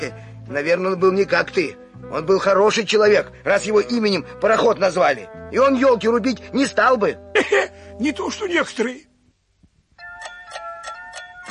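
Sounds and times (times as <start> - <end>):
speech: 0.0 - 9.1
clock striking the hour with bright chimes: 10.0 - 11.4.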